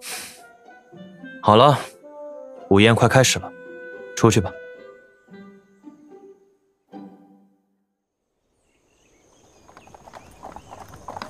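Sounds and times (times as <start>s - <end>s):
speech: 0.9s - 1.9s, 2.7s - 3.6s, 4.2s - 4.6s
horse hooves of a horse-drawn carriage clip-clopping: 9.3s - 11.2s.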